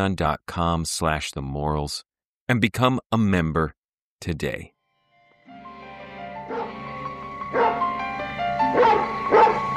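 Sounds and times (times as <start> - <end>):
speech: 0.0 - 4.7
dog shut in with the windows closed barking: 6.5 - 6.8, 7.5 - 7.8, 8.7 - 9.6.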